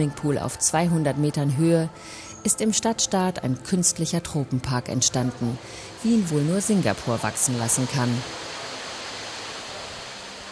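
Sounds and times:
speech: 0:00.0 - 0:08.6
artificial waterfalls rushing in a rainforest hall of a tropical park in Singapore: 0:05.5 - 0:10.5.

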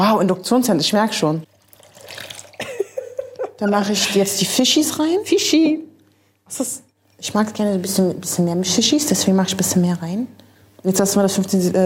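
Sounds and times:
speech: 0:00.0 - 0:01.5, 0:03.6 - 0:05.9, 0:06.5 - 0:11.8
water pouring into a pan for a broth: 0:01.4 - 0:02.9.

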